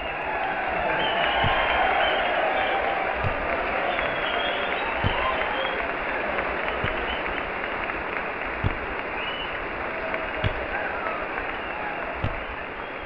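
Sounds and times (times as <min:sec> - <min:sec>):
faint murmuring voices: 0:00.0 - 0:13.0
large crowd applauding loudly: 0:00.0 - 0:13.0
sharp thumps: 0:01.4 - 0:01.9, 0:03.1 - 0:03.8, 0:04.9 - 0:05.5, 0:06.8 - 0:07.6, 0:08.4 - 0:10.8, 0:12.2 - 0:12.7.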